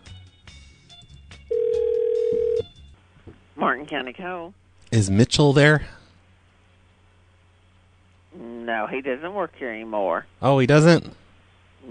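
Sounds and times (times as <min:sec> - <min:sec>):
landline telephone line tone: 0:01.5 - 0:02.7
speech: 0:03.6 - 0:06.0, 0:08.9 - 0:11.2.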